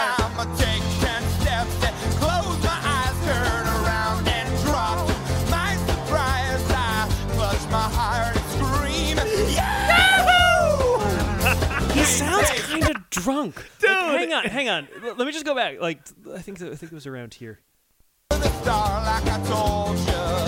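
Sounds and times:
music playing from a video: 0.0 - 12.4, 18.3 - 20.4
person screaming in a played video: 9.2 - 12.7
laughter: 9.3 - 15.4
speech: 13.2 - 17.7, 18.3 - 20.4.

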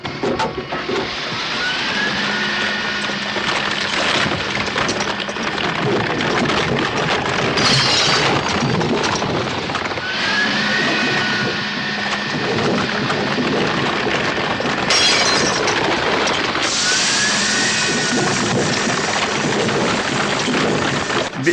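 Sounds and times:
steady mechanical whine: 0.0 - 21.5
car being crushed by crusher jaws: 2.8 - 21.4
shattering: 7.6 - 8.8, 14.9 - 16.5.

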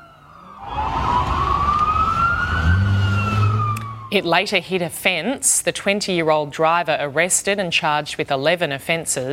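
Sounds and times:
police car sirens wailing during a pursuit: 0.0 - 4.8
heavy engine and traffic rumble in a store car park north of Newcastle: 0.0 - 5.2
speech: 4.1 - 9.3.

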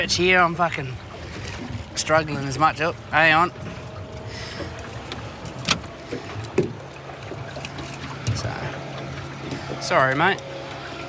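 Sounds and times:
speech: 0.0 - 1.1, 2.0 - 3.7, 9.8 - 10.5
sharp knocks and splashes against the boat hull: 0.0 - 11.0
small boat being steered through water with low rumble and lapping wash: 0.0 - 11.0.

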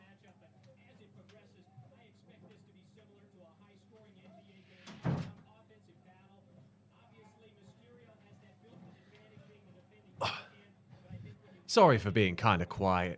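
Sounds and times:
door closing: 4.8 - 5.5
speech: 11.7 - 13.1.

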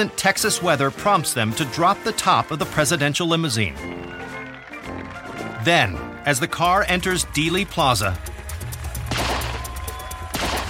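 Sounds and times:
speech: 0.0 - 4.2, 5.6 - 8.4
gunshots at an open-top presidential limousine in a motorcade: 9.1 - 10.6.

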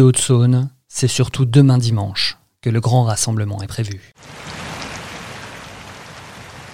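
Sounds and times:
speech: 0.0 - 4.5
steady rain falling with drops pattering on surfaces: 4.2 - 6.7.

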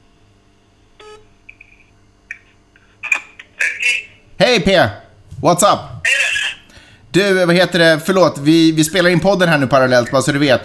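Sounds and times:
phone call being dialed with short electronic beeps and tones: 1.0 - 1.2
speech: 4.4 - 5.9, 7.1 - 10.6.

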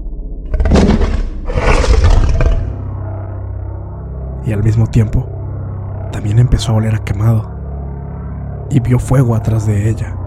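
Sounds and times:
low rumble: 0.0 - 10.2
deep monstrous growling roar: 0.5 - 2.9
speech: 4.5 - 5.4, 6.1 - 7.6, 8.7 - 10.2.

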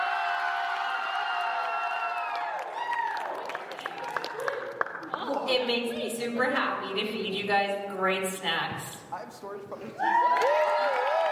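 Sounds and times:
applause and scattered claps: 0.0 - 5.7, 10.1 - 11.3
crowd cheering with whoops and shouts: 0.0 - 6.0, 10.0 - 11.3
speech: 5.5 - 10.7.

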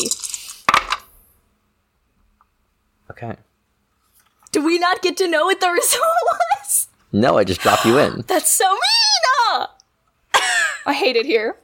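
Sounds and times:
three dice clattering onto a hard table: 0.0 - 1.1
speech: 3.2 - 3.5, 4.5 - 9.8, 10.8 - 11.6.

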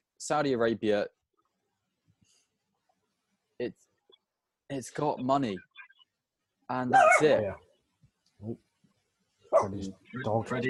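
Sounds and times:
speech: 0.2 - 1.2, 3.6 - 3.9, 4.7 - 5.7, 6.7 - 7.6, 8.4 - 8.6, 9.5 - 10.6
dog barking angrily: 6.9 - 7.4, 9.5 - 9.8.

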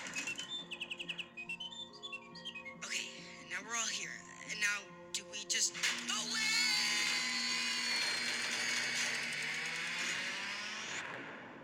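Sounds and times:
clockwork nightingale in a clock chirping: 0.0 - 11.0
speech: 3.6 - 7.0.

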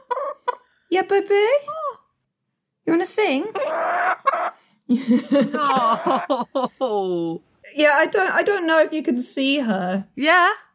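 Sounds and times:
pet chicken clucking and making warbling calls: 0.0 - 0.8, 3.5 - 4.6
speech: 0.9 - 1.8, 2.9 - 4.3, 4.9 - 10.6
laughter: 4.9 - 7.3.

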